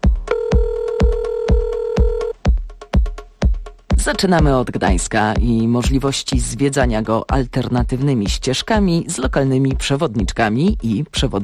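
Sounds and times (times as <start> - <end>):
telephone number being dialed: 0.3 - 2.4
speech: 4.0 - 11.4.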